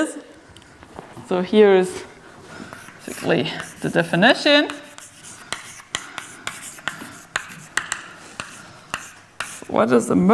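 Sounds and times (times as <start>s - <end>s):
speech: 1.3s - 2.1s, 3.1s - 4.8s, 9.8s - 10.3s
writing on a board during a mathematics lecture: 2.6s - 9.8s.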